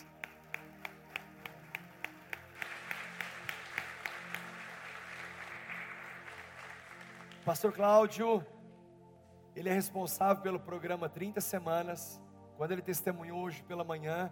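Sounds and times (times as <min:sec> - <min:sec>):
sustained applause: 0:00.0 - 0:07.5
crowd clapping in unison: 0:00.0 - 0:07.8
speech: 0:07.5 - 0:08.5, 0:09.6 - 0:14.3.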